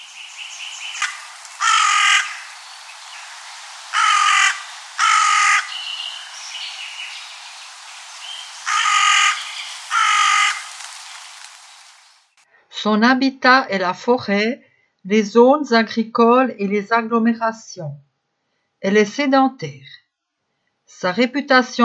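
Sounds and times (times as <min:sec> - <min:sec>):
carrion crow calling with harsh grating caws: 0:00.0 - 0:11.3
speech: 0:12.8 - 0:18.1, 0:18.8 - 0:20.0, 0:20.9 - 0:21.8.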